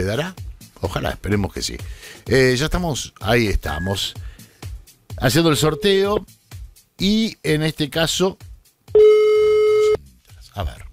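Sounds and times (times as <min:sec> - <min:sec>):
speech: 0:00.0 - 0:04.3, 0:05.2 - 0:06.4, 0:07.0 - 0:09.0, 0:10.6 - 0:10.9
telephone ringback tone on an outgoing call: 0:09.0 - 0:10.0.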